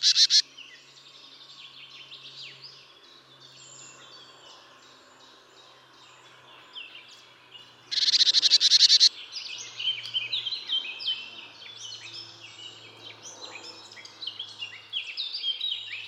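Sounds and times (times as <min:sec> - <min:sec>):
marsh tit Poecile palustris calls: 0:00.0 - 0:00.4, 0:07.9 - 0:09.2
other bird sounds: 0:00.0 - 0:01.0, 0:01.6 - 0:16.0.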